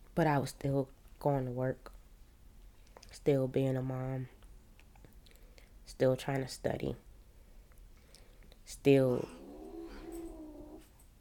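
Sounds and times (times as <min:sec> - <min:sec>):
speech: 0:00.2 - 0:02.0, 0:03.1 - 0:04.4, 0:06.0 - 0:07.0, 0:08.7 - 0:09.4
cat yowling during a fight between cats: 0:09.1 - 0:10.9.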